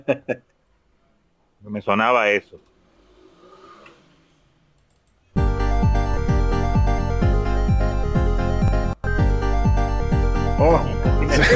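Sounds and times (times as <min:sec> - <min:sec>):
speech: 0:00.0 - 0:00.5, 0:01.7 - 0:02.7
upbeat electronic video game soundtrack music with thumping bass: 0:05.4 - 0:11.5.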